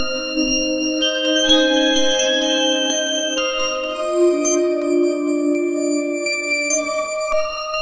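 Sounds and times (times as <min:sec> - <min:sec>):
innovative synthetic melody: 0:00.1 - 0:07.7.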